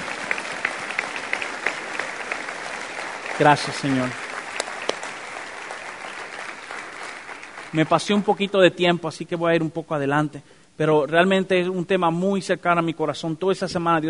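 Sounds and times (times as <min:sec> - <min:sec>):
congregation applauding in a large room: 0:00.0 - 0:08.7
speech: 0:03.4 - 0:04.2, 0:07.7 - 0:14.0.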